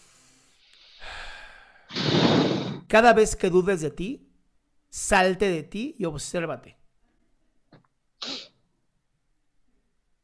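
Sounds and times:
slow deep breath as a breathing exercise: 0.0s - 2.9s
speech: 2.9s - 4.2s, 4.9s - 6.8s.

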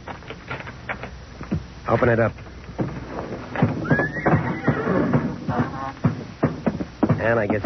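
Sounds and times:
horse hooves stamping on a hard barn floor: 0.0s - 7.6s
speech: 1.9s - 2.5s, 7.2s - 7.6s
old horse whinnying in a barn stall: 3.7s - 6.0s.

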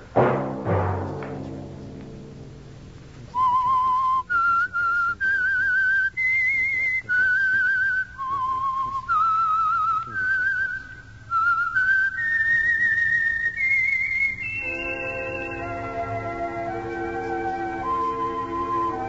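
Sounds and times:
orchestral accompaniment: 0.0s - 3.2s, 14.6s - 19.0s
lone clear whistled melody: 3.3s - 19.0s.

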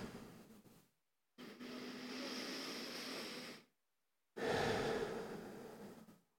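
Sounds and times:
slow deep breathing during a guided meditation: 1.4s - 3.7s, 4.4s - 6.3s.

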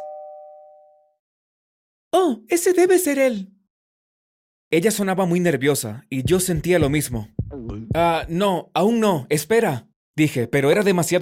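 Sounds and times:
electronic doorbell chime: 0.0s - 1.2s
speech: 2.2s - 3.6s, 4.7s - 11.2s.

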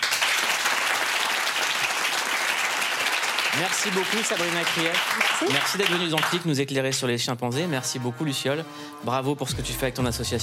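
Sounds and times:
audience applause: 0.0s - 6.5s
speech: 3.5s - 10.4s.

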